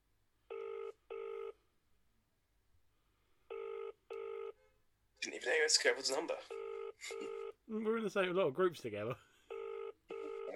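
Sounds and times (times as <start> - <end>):
ringback tone on an outgoing phone call: 0.5 - 1.6, 3.5 - 4.6, 6.5 - 7.6, 9.5 - 10.5
speech: 5.3 - 9.3.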